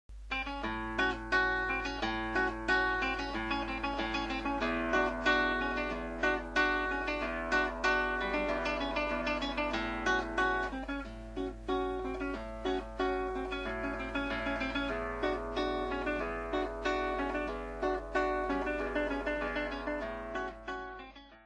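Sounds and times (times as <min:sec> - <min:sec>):
guitar playing a waltz: 0:00.3 - 0:21.4.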